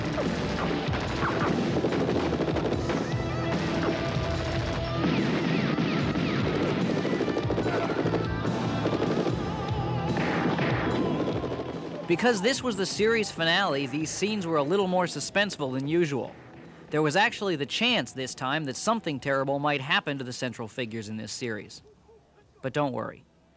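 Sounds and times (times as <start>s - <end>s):
gunfire in a TV action scene: 0.0s - 12.5s
loud dense rock music soundtrack: 0.0s - 14.9s
speech: 12.1s - 21.9s, 22.6s - 23.3s.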